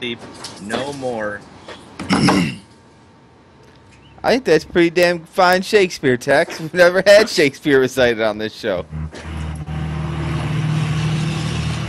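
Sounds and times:
speech: 0:00.0 - 0:01.6, 0:02.2 - 0:02.6, 0:04.2 - 0:09.3
Duramax diesel truck driving down the road in front of a porch: 0:08.8 - 0:11.8.

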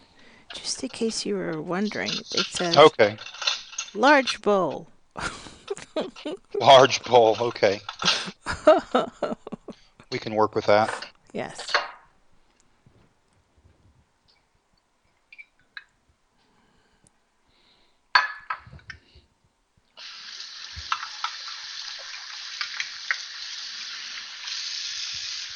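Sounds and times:
tap water running while rinsing measuring cups: 0:00.5 - 0:11.9, 0:20.0 - 0:25.5
speech: 0:00.7 - 0:03.3, 0:03.9 - 0:09.4, 0:10.1 - 0:11.8
laughter: 0:05.2 - 0:11.0.

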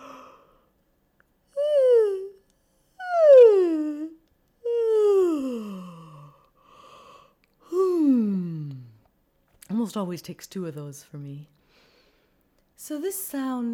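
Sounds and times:
voiced yawns sliding downward in pitch: 0:01.6 - 0:02.4, 0:03.0 - 0:09.0
speech: 0:09.8 - 0:11.6, 0:12.8 - 0:13.7.

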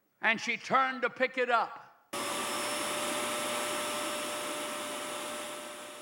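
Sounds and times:
speech: 0:00.2 - 0:01.8
vacuum cleaner running: 0:02.2 - 0:05.9.

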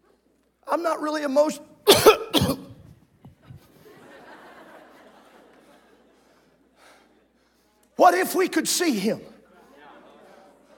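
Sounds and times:
speech: 0:00.7 - 0:02.7, 0:08.0 - 0:09.3
person coughing harshly: 0:01.9 - 0:02.9
laughter: 0:03.4 - 0:07.4, 0:09.4 - 0:10.7.

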